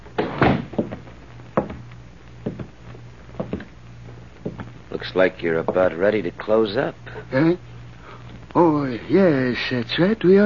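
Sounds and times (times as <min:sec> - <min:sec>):
low steady hum: 0:00.0 - 0:10.4
bank door pushed shut by a man: 0:00.2 - 0:01.0
soft wooden knocks: 0:00.2 - 0:01.0, 0:01.6 - 0:01.8, 0:02.4 - 0:02.7, 0:03.4 - 0:03.7, 0:04.4 - 0:04.7
speech: 0:05.0 - 0:07.7, 0:08.5 - 0:10.4.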